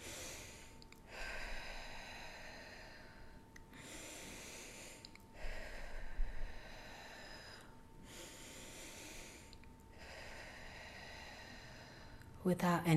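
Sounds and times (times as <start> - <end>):
rhythmic breathwork breathing: 0.0 - 12.4.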